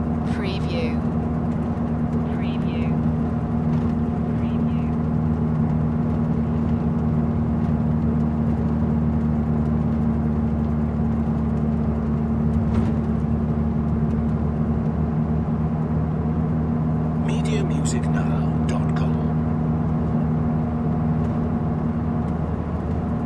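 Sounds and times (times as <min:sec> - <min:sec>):
travel bus ride: 0:00.0 - 0:23.2.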